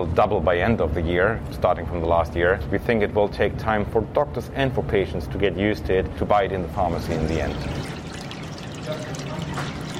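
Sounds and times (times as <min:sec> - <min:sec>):
speech: 0:00.0 - 0:08.0
water running through an irrigation system feeding medical cannabis plants: 0:06.9 - 0:09.9.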